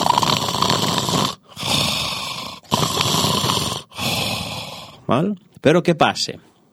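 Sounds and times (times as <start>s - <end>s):
sleeping person snoring: 0.0s - 5.1s
speech: 5.1s - 6.5s.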